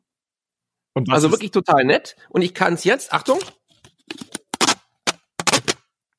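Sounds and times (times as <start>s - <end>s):
speech: 1.0s - 3.6s
printed paper strip tearing: 4.1s - 5.8s.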